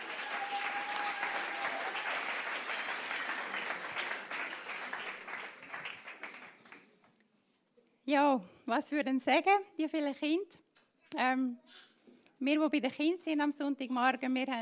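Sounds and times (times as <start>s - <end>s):
room full of people applauding: 0.0s - 7.0s
speech: 8.1s - 14.6s.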